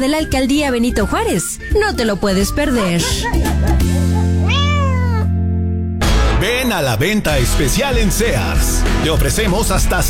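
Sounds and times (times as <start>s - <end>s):
speech: 0.0s - 4.1s, 6.4s - 10.0s
steady humming musical background: 0.1s - 10.0s
laughter: 2.6s - 4.6s
cat meowing: 4.4s - 5.4s.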